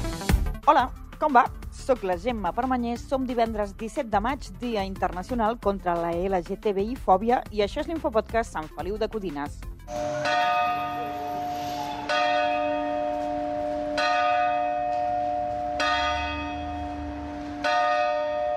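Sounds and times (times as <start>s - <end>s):
speech: 0.7s - 10.6s
clock bell of the civil bell tower in Sant Feliu de Codines striking the hour: 9.9s - 18.5s.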